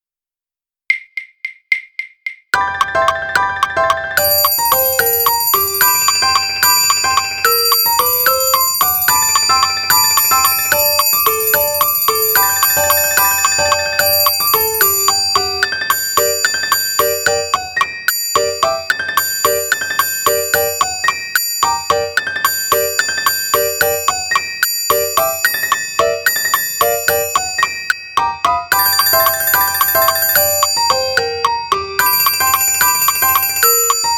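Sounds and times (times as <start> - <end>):
piano: 2.6 - 34.1.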